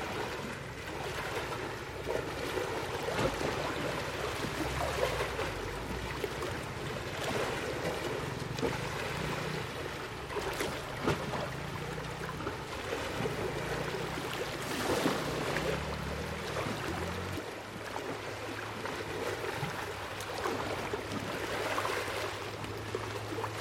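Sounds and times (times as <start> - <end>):
low droning hum shifting pitch: 0.0 - 17.4
stronger wave splashes: 0.0 - 23.5
waves lapping against a shoreline: 0.0 - 23.5.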